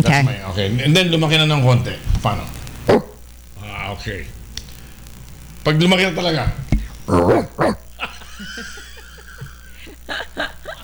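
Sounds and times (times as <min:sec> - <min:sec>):
speech: 0:00.0 - 0:03.0, 0:04.0 - 0:04.4, 0:05.6 - 0:07.8, 0:08.4 - 0:08.8
person imitating a grown dog barking: 0:07.1 - 0:07.9
soft scattered laughter and chuckling: 0:07.6 - 0:10.8.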